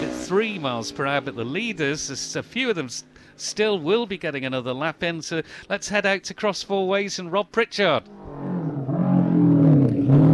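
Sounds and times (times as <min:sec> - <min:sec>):
500 Honda racing motorcycle roaring past during a road race: 0:00.0 - 0:01.8, 0:08.0 - 0:10.3
speech: 0:00.3 - 0:08.2.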